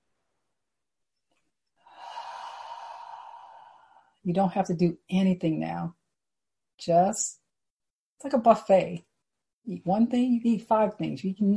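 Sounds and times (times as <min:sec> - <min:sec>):
group taking a deep breath: 0:01.8 - 0:04.2
speech: 0:04.2 - 0:06.0, 0:06.8 - 0:07.4, 0:08.2 - 0:11.5.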